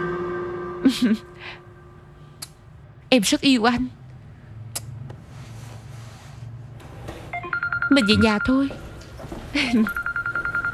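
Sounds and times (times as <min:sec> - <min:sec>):
speech: 0:00.9 - 0:01.6, 0:03.1 - 0:04.0, 0:08.0 - 0:08.8, 0:09.5 - 0:10.0
telephone ringing with a rapid electronic trill: 0:07.4 - 0:09.1, 0:09.8 - 0:10.7.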